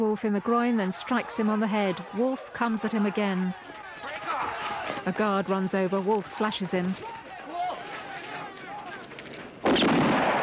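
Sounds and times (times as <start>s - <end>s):
speech: 0.0s - 4.2s, 5.0s - 7.2s
gunshot fired by a guard in a prison watchtower: 9.6s - 10.4s.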